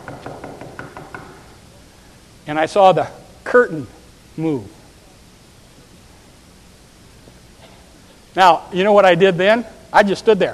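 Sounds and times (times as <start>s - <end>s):
knocking on a door: 0.0s - 1.4s
speech: 2.5s - 4.8s, 8.4s - 10.5s.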